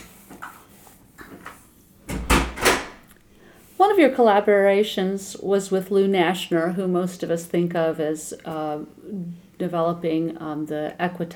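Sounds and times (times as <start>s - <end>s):
door creaking: 2.1s - 3.1s
speech: 3.9s - 11.3s.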